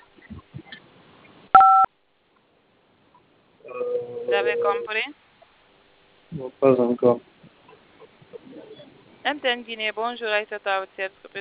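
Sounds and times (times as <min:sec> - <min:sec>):
phone keypad dialing beep on a mobile network line: 0:01.6 - 0:01.9
speech: 0:04.3 - 0:05.2, 0:06.4 - 0:07.3, 0:09.2 - 0:11.4.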